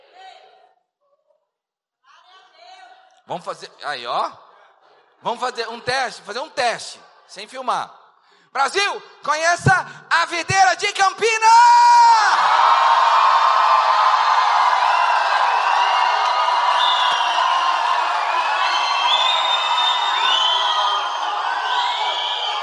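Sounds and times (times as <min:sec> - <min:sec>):
speech: 0:03.3 - 0:04.5, 0:05.2 - 0:13.2
large church audience shouting a whooping war cry: 0:11.6 - 0:22.6.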